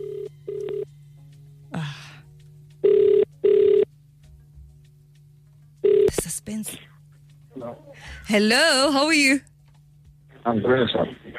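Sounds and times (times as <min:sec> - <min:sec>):
telephone ringback tone on an outgoing call: 0:00.0 - 0:00.9, 0:02.8 - 0:03.9, 0:05.8 - 0:06.1
steady low hum: 0:00.0 - 0:11.3
speech: 0:08.3 - 0:09.5, 0:10.4 - 0:11.3.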